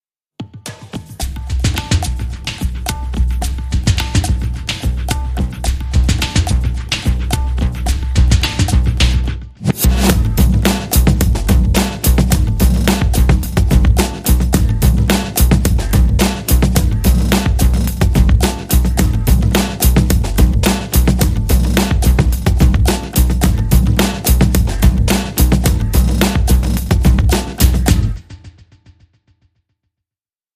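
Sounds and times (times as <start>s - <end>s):
Bombay bass short rhythm: 1.2s - 28.4s.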